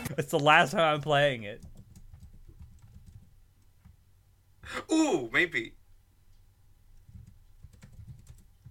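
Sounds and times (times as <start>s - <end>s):
speech: 0.2s - 1.7s, 4.7s - 5.8s
typing on a computer keyboard: 1.6s - 3.3s, 7.1s - 8.6s.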